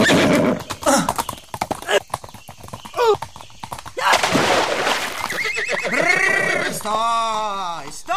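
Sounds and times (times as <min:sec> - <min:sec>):
horse neighing: 0:00.0 - 0:02.2, 0:02.9 - 0:03.3, 0:05.0 - 0:07.1
horse hooves clip-clopping: 0:00.0 - 0:08.1.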